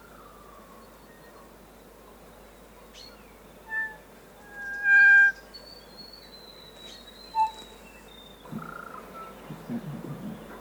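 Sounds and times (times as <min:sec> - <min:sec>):
kokako singing long flute-like held notes: 0:03.7 - 0:05.5, 0:07.3 - 0:07.6.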